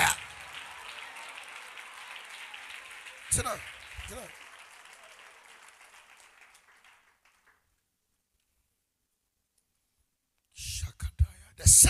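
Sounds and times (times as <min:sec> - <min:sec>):
audience clapping hands: 0:00.0 - 0:07.9
speech: 0:03.3 - 0:04.4.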